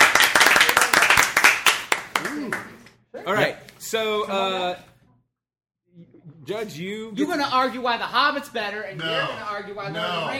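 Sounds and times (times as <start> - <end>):
small crowd applause for a volunteer: 0.0 - 2.8
speech: 3.3 - 4.9, 6.5 - 10.3.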